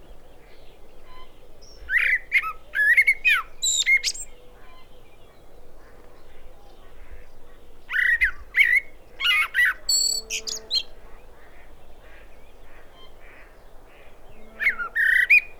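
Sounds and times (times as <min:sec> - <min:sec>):
common blackbird Turdus merula singing mellow whistled notes: 0:01.0 - 0:05.2, 0:07.9 - 0:10.9.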